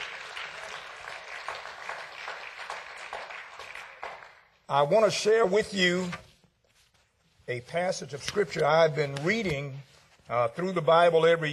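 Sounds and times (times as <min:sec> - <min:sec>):
church congregation applauding: 0:00.0 - 0:04.7
speech: 0:04.7 - 0:06.2, 0:07.5 - 0:11.5.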